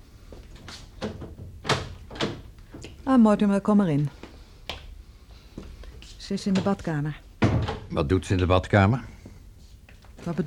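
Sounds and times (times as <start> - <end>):
front door being opened with dull thuds and knocks: 1.0 - 2.6, 7.4 - 7.9
speech: 3.1 - 4.2, 6.3 - 7.2, 7.9 - 9.1, 10.2 - 10.4.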